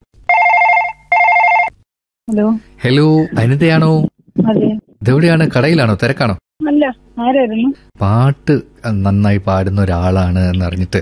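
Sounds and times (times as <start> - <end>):
telephone ringing on an outgoing call: 0.3 - 1.8
speech: 2.3 - 11.0.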